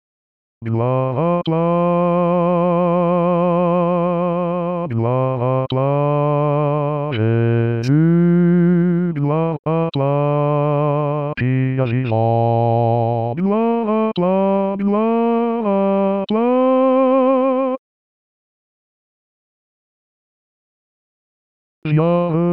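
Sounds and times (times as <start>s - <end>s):
bass voice singing a hymn: 0.6s - 17.8s, 21.8s - 22.5s.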